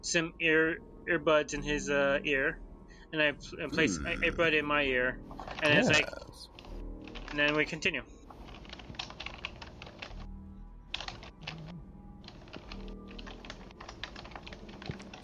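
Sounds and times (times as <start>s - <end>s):
speech: 0.0s - 6.5s, 7.3s - 8.1s
loud typing on a computer keyboard: 6.6s - 7.5s, 8.4s - 10.2s, 10.9s - 11.6s, 12.2s - 15.2s.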